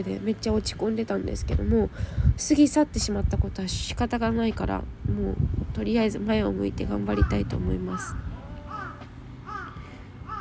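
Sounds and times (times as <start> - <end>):
speech: 0.0 - 8.3
low constant rumble: 0.0 - 10.3
crow cawing: 7.2 - 10.3.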